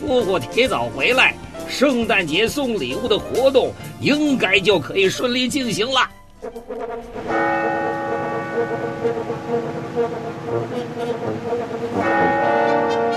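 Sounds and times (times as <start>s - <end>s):
speech: 0.1s - 8.0s
bell tolling midnight at Christmas in a city: 7.0s - 11.2s, 12.0s - 13.1s.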